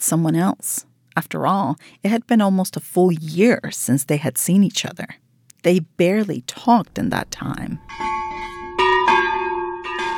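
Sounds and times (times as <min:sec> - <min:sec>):
speech: 0:00.1 - 0:08.2
church bells ringing: 0:07.8 - 0:10.1.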